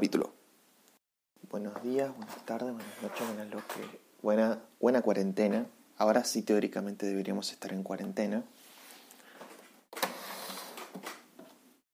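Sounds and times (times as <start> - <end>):
speech: 0.0 - 0.4, 1.5 - 8.6
rustling noise: 1.6 - 4.0, 8.5 - 11.6
printer scraping and shuffling on a desk: 1.9 - 4.0, 10.0 - 11.0.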